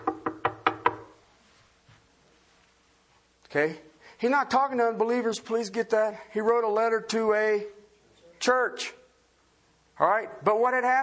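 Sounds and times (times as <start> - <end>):
knocking on a wooden door: 0.0 - 1.1
speech: 3.5 - 7.8, 8.4 - 9.0, 10.0 - 11.0.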